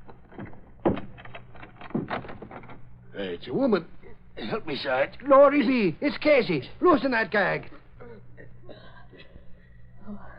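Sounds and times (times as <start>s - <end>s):
closet door creaking open: 0.0s - 2.8s
low room noise: 0.0s - 10.3s
speech: 3.2s - 7.7s.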